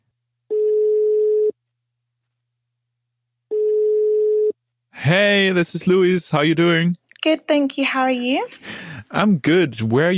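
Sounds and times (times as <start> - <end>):
telephone ringing tone on an outgoing call: 0.5 - 1.6, 3.5 - 4.6
speech: 5.1 - 10.1.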